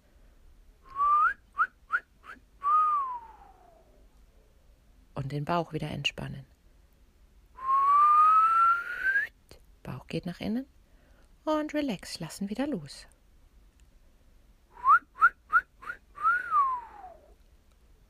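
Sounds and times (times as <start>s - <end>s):
person whistling as breathing exercise: 0.9s - 3.8s, 7.6s - 9.3s, 14.8s - 17.3s
speech: 5.3s - 6.6s, 10.1s - 10.8s, 11.4s - 13.1s.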